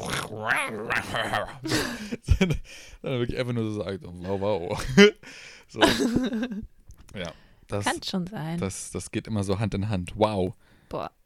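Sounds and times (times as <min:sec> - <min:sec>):
person imitating dog barking and whining: 0:00.0 - 0:01.6
speech: 0:00.4 - 0:11.2.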